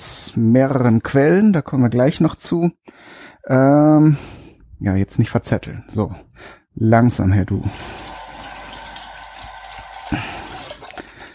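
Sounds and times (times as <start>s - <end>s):
speech: 0.3s - 8.0s, 10.1s - 10.4s
running tap water while washing hands after handling raw chicken: 7.6s - 11.3s.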